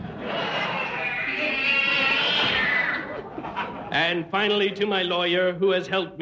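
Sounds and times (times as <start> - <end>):
cat yowling after being kicked: 0.7 - 3.1
speech: 4.0 - 6.2.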